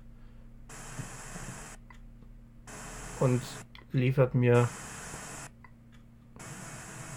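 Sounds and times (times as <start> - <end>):
broadband radio static while scanning frequencies: 0.7 - 1.8, 2.7 - 3.7, 4.4 - 5.6, 6.4 - 7.1
speech: 3.2 - 4.9.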